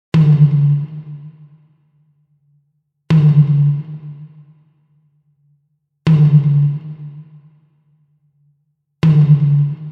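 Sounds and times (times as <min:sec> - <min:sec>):
Brazilian tribal drum: 0:00.2 - 0:00.9, 0:03.1 - 0:03.9, 0:06.1 - 0:06.8, 0:09.0 - 0:09.9.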